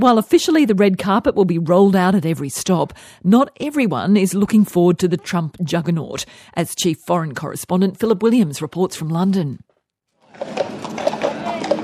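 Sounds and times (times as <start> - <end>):
speech: 0.0 - 9.7
police horses' hooves clip-clopping along a street during a procession: 10.2 - 11.8.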